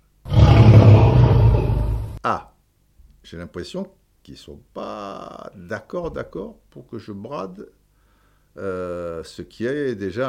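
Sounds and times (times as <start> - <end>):
lion roaring: 0.3 - 2.2
speech: 2.2 - 2.5, 3.2 - 7.8, 8.6 - 10.2.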